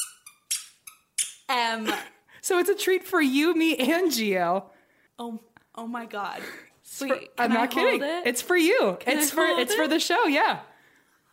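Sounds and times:
clown nose from a clown school uniform squeaking: 0.0 - 1.5
speech: 1.5 - 10.7.

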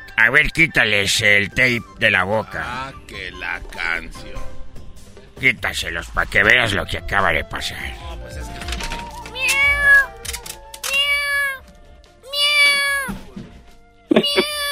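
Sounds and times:
speech: 0.2 - 4.5, 5.4 - 8.6
several cats meowing: 9.2 - 11.6, 12.3 - 13.2, 14.1 - 14.7.

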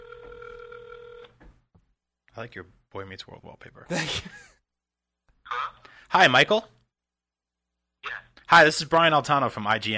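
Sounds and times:
telephone ringback tone over a phone line: 0.0 - 1.3
speech: 2.4 - 4.6, 6.1 - 6.8, 8.5 - 9.9.

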